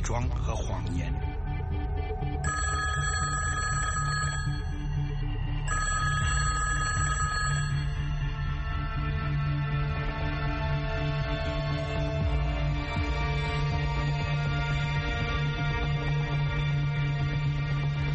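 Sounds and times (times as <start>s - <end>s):
low steady music or ambience: 0.0s - 18.1s
speech: 0.1s - 1.4s
telephone bell ringing: 2.4s - 4.9s, 5.7s - 8.6s.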